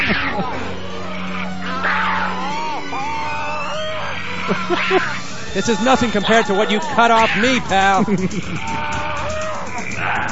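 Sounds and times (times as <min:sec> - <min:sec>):
laughter: 0:00.0 - 0:01.4, 0:04.4 - 0:10.0
calf mooing: 0:00.0 - 0:10.2
speech: 0:00.1 - 0:00.7, 0:04.5 - 0:08.9.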